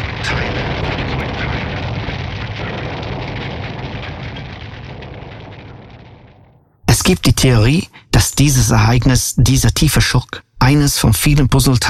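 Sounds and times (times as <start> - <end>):
roar of burning aircraft wreckage: 0.0 - 6.8
crackles and pops of burning aircraft wreckage: 0.0 - 8.5
speech: 7.1 - 11.8.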